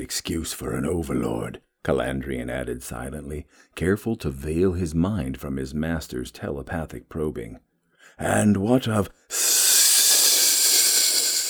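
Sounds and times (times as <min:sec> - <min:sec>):
speech: 0:00.0 - 0:09.5
rumbling hiss of a speaking voice: 0:09.3 - 0:11.4.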